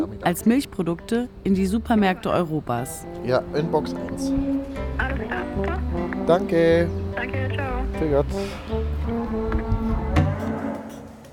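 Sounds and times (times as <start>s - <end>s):
speech: 0.2s - 8.8s
cows mooing in a barn: 2.3s - 11.2s.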